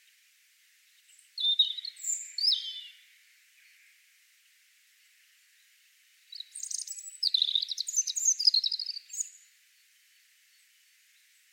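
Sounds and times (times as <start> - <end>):
European robin singing: 0.9 - 4.0, 6.3 - 11.5.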